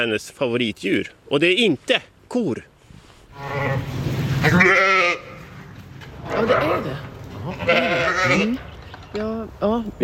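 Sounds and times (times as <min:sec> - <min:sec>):
speech: 0:00.0 - 0:02.7, 0:06.4 - 0:10.0
sheep bleating: 0:03.4 - 0:05.5, 0:06.2 - 0:08.6.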